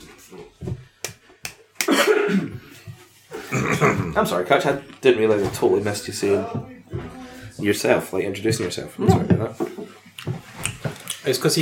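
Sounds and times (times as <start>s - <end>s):
person coughing: 1.8s - 2.6s, 3.4s - 4.2s
speech: 3.9s - 6.8s, 7.6s - 9.7s, 11.3s - 11.6s.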